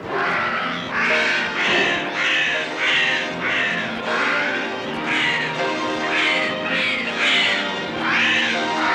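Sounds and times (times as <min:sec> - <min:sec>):
crows cawing harshly: 0:00.0 - 0:08.9.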